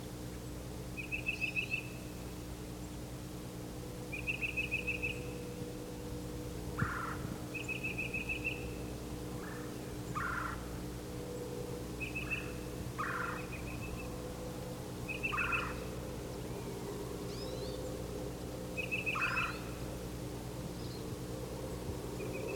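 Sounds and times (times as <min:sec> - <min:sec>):
faint steady low hum: 0:00.0 - 0:22.5
northern parula warbler singing: 0:01.0 - 0:03.0, 0:04.0 - 0:05.7, 0:06.8 - 0:14.3, 0:15.0 - 0:20.0, 0:20.7 - 0:21.2, 0:22.0 - 0:22.5.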